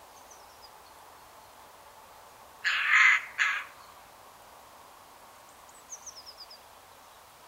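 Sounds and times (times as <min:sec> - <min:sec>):
Eurasian Jay Garrulus glandarius harsh grating screeches: 0:02.7 - 0:03.7.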